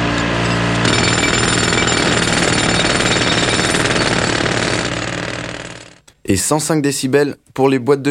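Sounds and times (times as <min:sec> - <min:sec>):
jackhammer pounding: 0:00.0 - 0:06.0
speech: 0:06.3 - 0:08.0.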